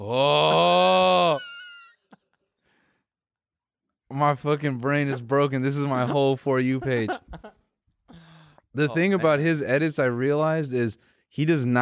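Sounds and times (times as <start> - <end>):
speech: 0.0 - 0.6, 4.2 - 7.6, 8.8 - 11.8
person making a droning snore with their voice: 0.0 - 1.4
laughter: 0.1 - 2.4, 4.8 - 7.6, 8.8 - 9.6.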